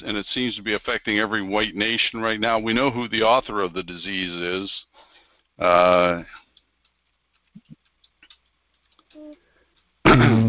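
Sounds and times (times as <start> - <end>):
speech: 0.0 - 4.9, 5.6 - 6.4
soft irregular keyboard taps while typing a message: 6.4 - 9.9.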